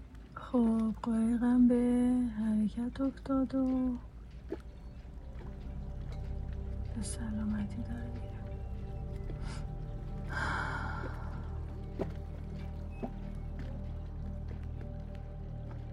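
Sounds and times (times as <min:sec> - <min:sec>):
ship engine rumbling while getting underway at dawn: 0:00.0 - 0:15.9
voices: 0:00.4 - 0:04.1, 0:06.8 - 0:11.8.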